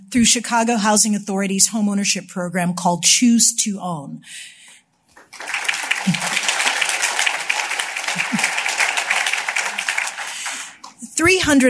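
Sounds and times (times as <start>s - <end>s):
speech: 0.1s - 4.6s, 6.0s - 6.4s, 11.2s - 11.6s
audience applauding: 5.1s - 11.0s
laughter: 5.4s - 10.8s.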